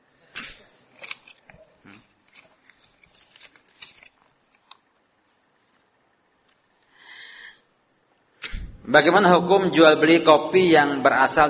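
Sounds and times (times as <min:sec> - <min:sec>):
paper sheets rustling and crinkling: 0:00.3 - 0:05.9
speech: 0:08.9 - 0:11.4.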